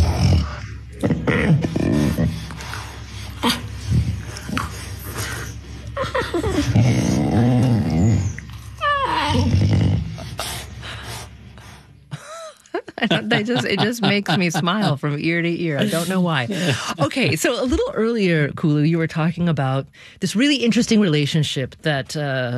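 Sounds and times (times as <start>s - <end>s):
two captive snow leopard sisters grumbling while playing in a zoo in the United Kingdom: 0.0s - 10.8s
laughter: 6.0s - 6.8s, 12.1s - 15.0s, 15.8s - 17.4s
speech: 13.4s - 22.5s.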